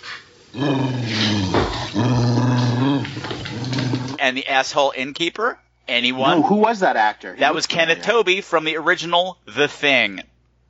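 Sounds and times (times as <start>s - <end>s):
speech: 0.5s - 1.2s, 4.2s - 10.3s
dog growling low: 0.6s - 4.2s.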